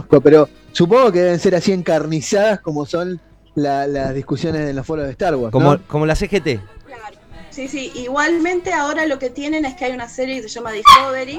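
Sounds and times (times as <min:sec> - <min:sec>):
speech: 0:00.1 - 0:11.3
single sharp dog bark: 0:10.8 - 0:11.3.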